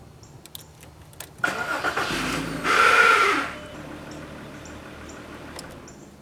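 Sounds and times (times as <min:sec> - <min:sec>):
starter motor grinding: 0:01.4 - 0:06.0.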